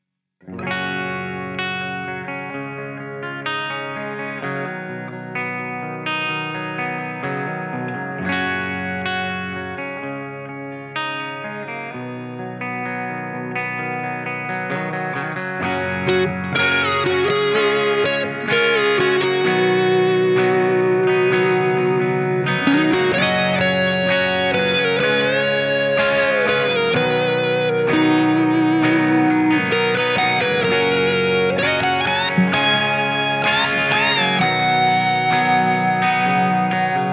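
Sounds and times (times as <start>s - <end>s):
electric guitar through amplifier: 0.4s - 37.1s.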